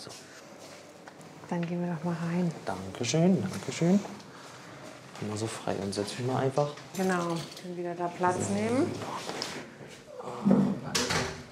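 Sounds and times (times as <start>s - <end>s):
faint room noise: 0.0s - 11.4s
speech: 1.5s - 4.2s, 5.2s - 10.6s
door closing with a low solid thump: 10.4s - 11.4s.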